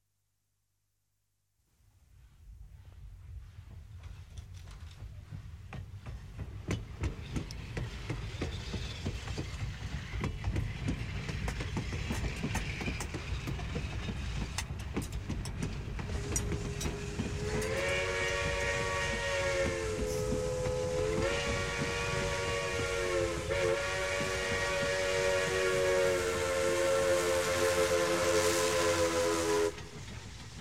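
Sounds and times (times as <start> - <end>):
train passing: 2.8 - 30.5
train whistle: 16.2 - 29.8.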